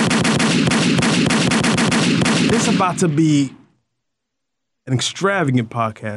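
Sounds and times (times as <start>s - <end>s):
automatic gunfire sound effects: 0.0s - 3.6s
speech: 2.7s - 3.6s, 4.8s - 6.1s.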